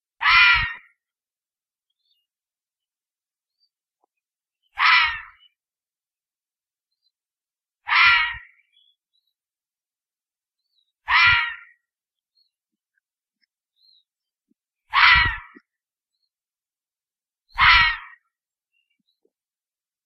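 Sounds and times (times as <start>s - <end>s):
red fox screaming: 0.2s - 1.0s, 4.7s - 5.5s, 7.8s - 8.6s, 11.0s - 11.8s, 14.9s - 15.7s, 17.6s - 18.3s.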